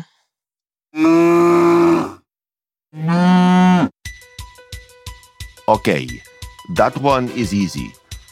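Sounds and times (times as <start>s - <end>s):
cow mooing: 1.0s - 2.2s, 3.0s - 3.9s
speech: 5.8s - 8.0s.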